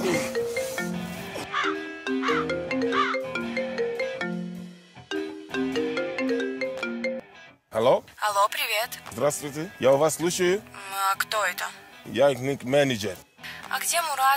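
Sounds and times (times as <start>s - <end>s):
telephone ringing with melodic ringtone: 0.0s - 7.3s
speech: 7.8s - 14.3s.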